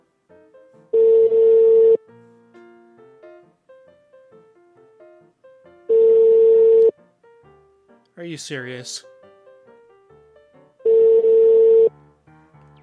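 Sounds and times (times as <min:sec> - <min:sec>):
telephone ringing tone while calling someone: 0:00.9 - 0:02.0, 0:05.9 - 0:06.9, 0:10.8 - 0:11.9
speech: 0:08.2 - 0:09.1.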